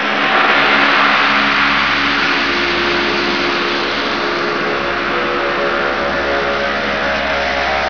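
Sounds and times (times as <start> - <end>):
ambient object sounds: 0.0 - 7.8
power machine running: 0.0 - 7.8.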